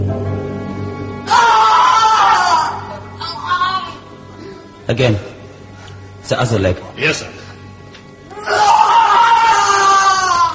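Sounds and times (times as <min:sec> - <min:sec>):
man screaming in pain: 0:01.3 - 0:02.9, 0:08.3 - 0:10.5
speech: 0:04.9 - 0:05.3, 0:06.3 - 0:07.4.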